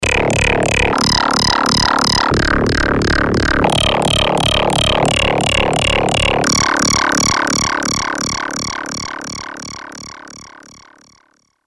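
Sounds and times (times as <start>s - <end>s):
Polivoks formanta synthesizer rattling effect: 0.0s - 10.6s.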